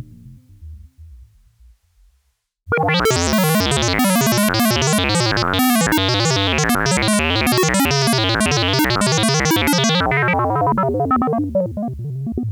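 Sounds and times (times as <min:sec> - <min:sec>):
ARP Odyssey synthesizer effects: 0:02.7 - 0:12.4.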